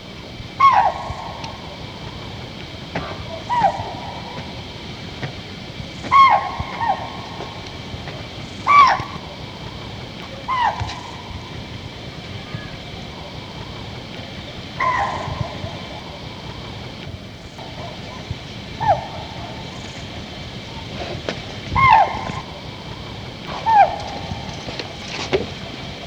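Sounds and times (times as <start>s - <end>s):
chital alarm call in Dudhwa NP: 0.0s - 26.0s.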